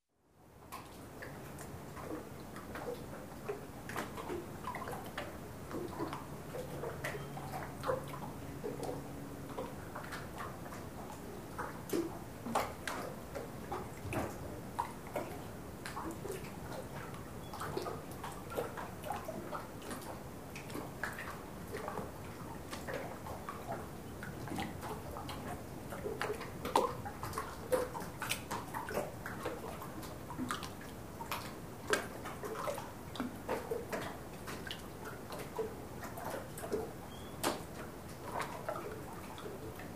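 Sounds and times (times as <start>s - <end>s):
small sea waves crashing on a boat: 0.4s - 39.9s.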